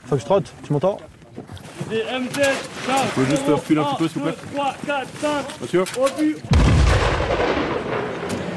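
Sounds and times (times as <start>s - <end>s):
speech: 0.1s - 8.1s
artillery fire during a military exercise: 6.5s - 8.4s.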